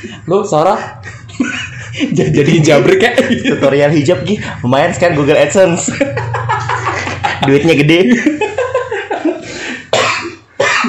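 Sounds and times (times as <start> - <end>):
speech: 0.0 - 6.5, 7.4 - 8.5
laughter: 0.0 - 9.7
rough throaty person coughing: 9.9 - 10.8.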